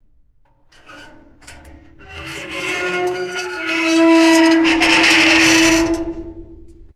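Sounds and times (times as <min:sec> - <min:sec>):
scraping drag: 0:00.6 - 0:06.9
heavy metallic screech: 0:00.7 - 0:06.9.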